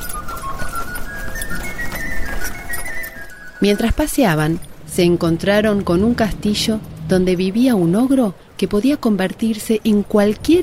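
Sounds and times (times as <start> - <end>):
horse hooves clip-clopping during a horse-drawn carriage ride: 0.0 - 8.2
speech: 3.6 - 10.6.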